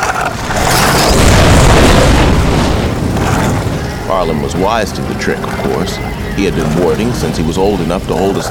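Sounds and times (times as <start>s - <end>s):
fiery burst of small creatures spitting fire: 0.4s - 5.6s
speech: 4.2s - 8.4s.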